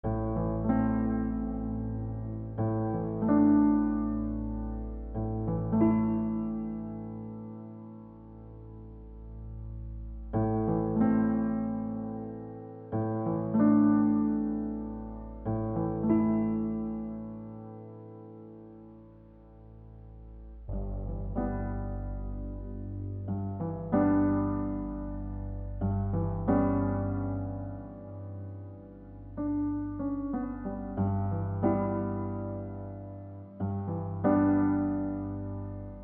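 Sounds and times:
simple piano piece: 0.0 - 36.0.

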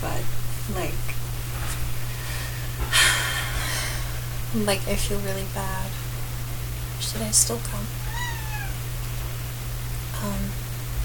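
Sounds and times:
steady low electrical hum: 0.0 - 11.0
speech: 4.5 - 6.0, 7.1 - 8.0
cat meowing: 8.0 - 8.8.

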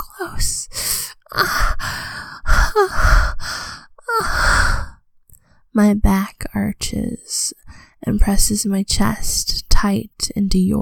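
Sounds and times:
speech: 0.2 - 2.1, 2.8 - 3.3, 5.8 - 10.8
heavy gasping and panting breaths: 0.7 - 5.6.

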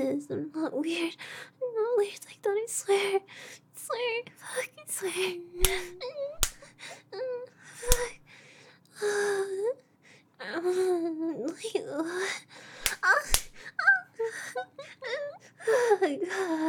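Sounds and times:
speech: 0.0 - 8.2, 9.0 - 16.6
sharp loud slaps across the face delivered by a woman: 5.6 - 6.6, 7.9 - 8.2, 12.8 - 13.6.

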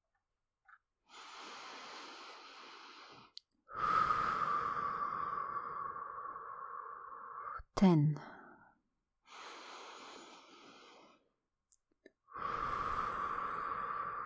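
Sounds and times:
person taking a deep breath in a calming exercise: 1.1 - 7.6, 9.3 - 11.3, 12.3 - 14.2
speech: 7.8 - 8.3.

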